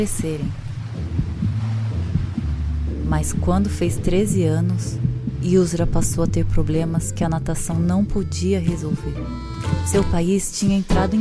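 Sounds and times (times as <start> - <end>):
speech: 0.0 - 1.1, 3.1 - 11.1
low rumbling wash of water: 0.0 - 8.1
deep heartbeat of a swimmer: 0.0 - 11.1.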